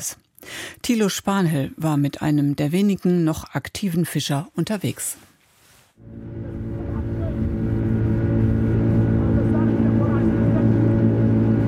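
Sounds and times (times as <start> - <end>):
speech: 0.0 - 5.3, 6.0 - 6.8
motorboat engine roaring as the boat speeds over water on a river: 6.0 - 11.6.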